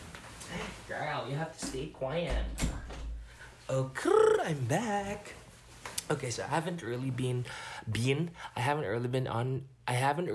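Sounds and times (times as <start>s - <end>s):
speech: 0.9s - 2.8s, 3.7s - 5.4s, 6.1s - 10.3s
door closing thump: 2.2s - 3.2s.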